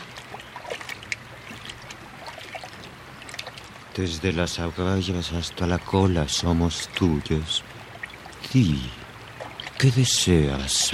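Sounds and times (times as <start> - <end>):
water sloshing and splashing as people wade in: 0.0 - 10.9
speech: 4.0 - 7.7, 8.5 - 9.0, 9.8 - 10.9.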